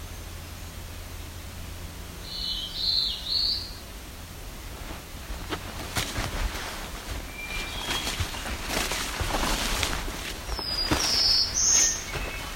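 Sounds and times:
Black-throated Blue Warbler song: 0.0s - 12.5s
rustling: 4.2s - 12.5s.

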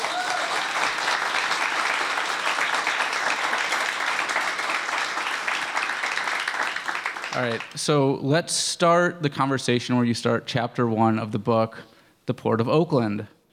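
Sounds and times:
audience applauding an author: 0.0s - 7.8s
speech: 7.4s - 13.4s.

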